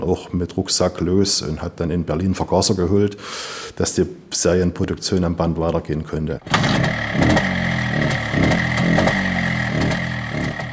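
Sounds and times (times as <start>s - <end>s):
speech: 0.1s - 8.5s
two-stroke MZ motorcycle engine built in Zschopau revving: 6.4s - 10.7s.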